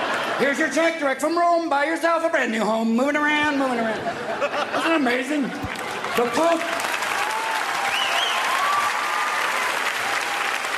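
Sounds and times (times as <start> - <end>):
laughter: 0.0 - 1.1, 3.6 - 7.1
speech: 0.4 - 6.8
large audience applauding: 5.7 - 10.7
faint whoops and whistles: 7.8 - 9.4.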